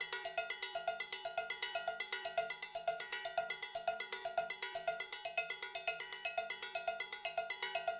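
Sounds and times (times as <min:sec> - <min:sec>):
acoustic timbale percussion loop: 0:00.0 - 0:07.9.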